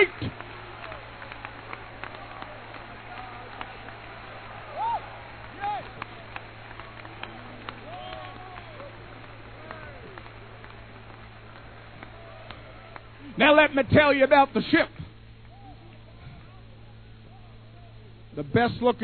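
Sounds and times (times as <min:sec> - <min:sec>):
audience clapping: 0:00.0 - 0:16.6
vocal whoops: 0:07.8 - 0:08.9
speech: 0:13.4 - 0:15.0, 0:18.4 - 0:19.0.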